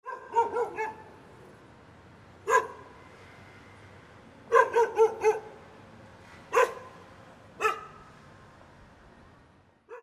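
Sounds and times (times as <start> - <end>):
dog: 0.0 - 1.1, 2.5 - 2.8, 4.5 - 5.5, 6.5 - 6.9, 7.6 - 8.0.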